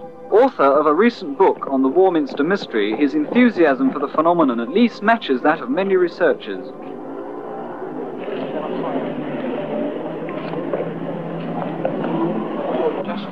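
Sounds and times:
car engines idling while lining up where there is no parking: 0.0 - 13.3
murmur of indistinct voices: 0.0 - 13.3
speech: 0.3 - 6.9.

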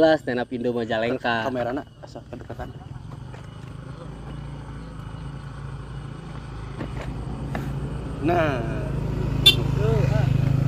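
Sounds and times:
speech: 0.0 - 2.9, 8.2 - 9.0
car engine rumbling: 0.8 - 10.6
car horn honk: 9.4 - 9.9.

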